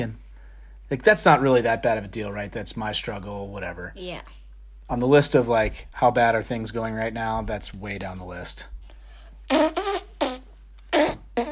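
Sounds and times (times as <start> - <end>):
speech: 0.0 - 0.2, 0.9 - 8.8
fart sound effects: 9.5 - 11.5.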